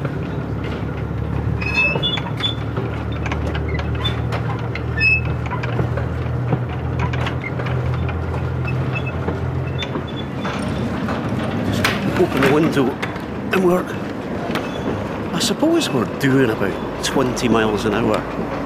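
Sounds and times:
guard's van coupling metallic clicks and knocks: 0.0s - 13.4s
train rumbling rail clatter at moderate speed: 0.0s - 18.6s
speech: 12.6s - 13.0s, 13.6s - 14.1s, 15.4s - 18.6s.

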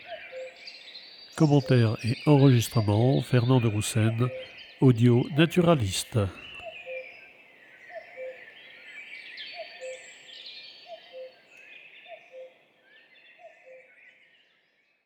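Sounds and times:
speech: 1.4s - 6.4s
common cuckoos calling at dawn in spring in Val Maravel: 1.4s - 6.6s
songbirds chattering: 1.4s - 6.6s.

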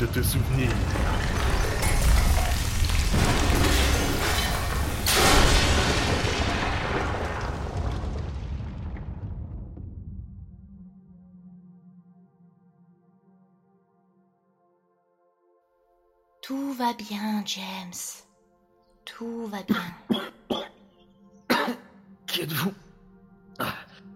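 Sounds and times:
speech: 0.0s - 1.3s, 16.8s - 18.2s, 19.1s - 20.4s, 22.4s - 22.8s, 23.6s - 23.8s
loud deep thunder rumbling during a storm: 0.0s - 10.8s.

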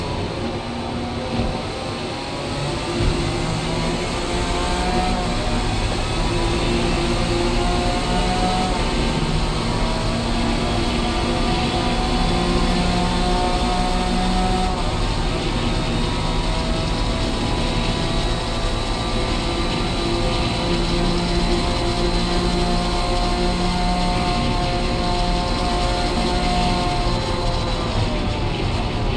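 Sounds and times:
video game car engine droning while driving, exterior view: 0.0s - 29.1s.

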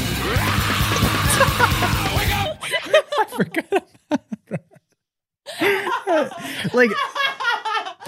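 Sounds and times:
shrill scream: 0.2s - 2.6s
laughter-like sounds: 1.0s - 8.0s
speech: 6.8s - 7.1s.

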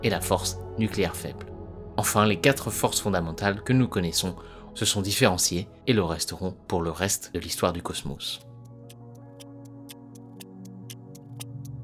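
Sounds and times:
speech: 0.0s - 8.5s
clock ticking sound effect: 8.3s - 11.8s.

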